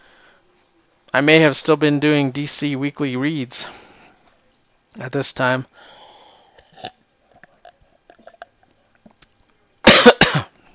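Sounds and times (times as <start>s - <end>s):
speech: 1.2s - 3.8s, 5.0s - 6.0s
person coughing: 9.8s - 10.6s.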